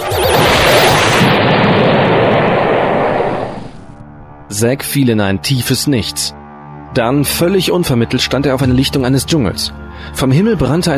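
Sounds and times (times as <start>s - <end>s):
sustained explosion roaring: 0.0s - 4.5s
speech: 4.6s - 10.9s.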